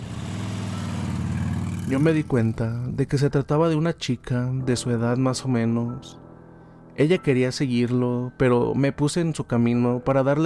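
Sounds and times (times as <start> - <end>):
motorcycle engine roaring: 0.0 - 2.9
speech: 1.9 - 6.2, 7.0 - 10.4.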